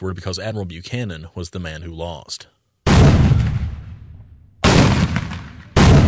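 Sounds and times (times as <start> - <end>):
speech: 0.0 - 3.2
cannon fire at reenactment: 2.9 - 6.0.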